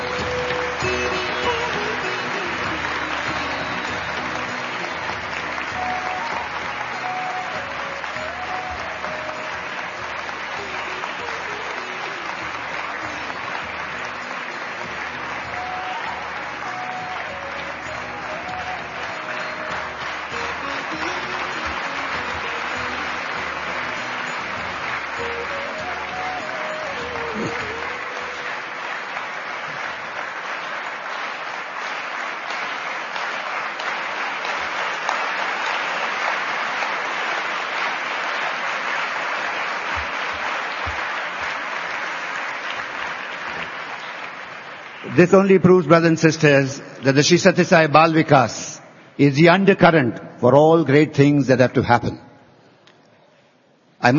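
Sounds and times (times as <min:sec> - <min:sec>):
large crowd applauding: 0:00.0 - 0:49.7
speech: 0:45.2 - 0:52.2.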